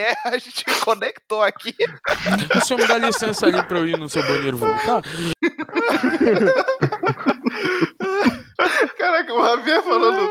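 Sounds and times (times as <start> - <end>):
speech: 0.0 - 10.3
man coughing harshly: 1.8 - 5.0
laughter: 1.8 - 10.3.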